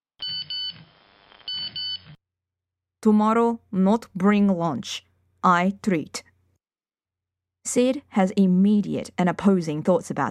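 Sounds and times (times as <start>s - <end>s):
mobile phone buzzing in a hand with an incoming message: 0.2s - 2.2s
speech: 3.0s - 6.3s, 7.6s - 10.2s.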